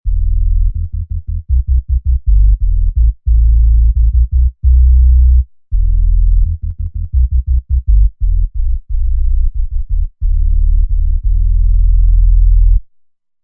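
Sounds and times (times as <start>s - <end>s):
sub bass: 0.0s - 12.9s.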